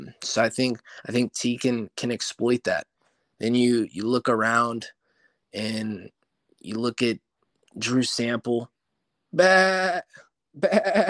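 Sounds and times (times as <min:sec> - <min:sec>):
speech: 0:00.2 - 0:07.2, 0:07.8 - 0:08.7, 0:09.3 - 0:11.0
goat bleating: 0:09.4 - 0:11.0.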